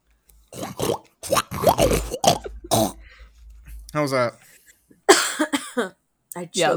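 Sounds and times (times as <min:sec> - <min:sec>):
people imitating a pig's oink: 0:00.6 - 0:03.1
speech: 0:04.0 - 0:04.4, 0:05.8 - 0:06.7.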